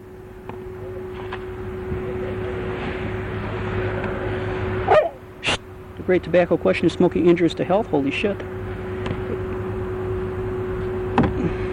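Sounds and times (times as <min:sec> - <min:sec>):
steady low mechanical drone: 0:00.0 - 0:11.7
dog barking: 0:04.9 - 0:05.2
speech: 0:06.1 - 0:08.6.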